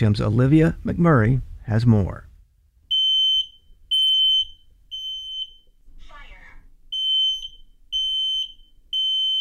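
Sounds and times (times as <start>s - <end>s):
speech: 0.0s - 2.3s
home smoke alarm beeping during a button test: 2.9s - 5.8s, 6.9s - 9.3s.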